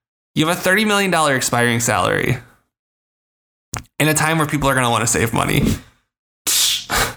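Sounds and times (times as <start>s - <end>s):
speech: 0.4s - 2.5s, 4.0s - 6.8s
voice imitating a bandage being ripped off: 3.8s - 4.2s.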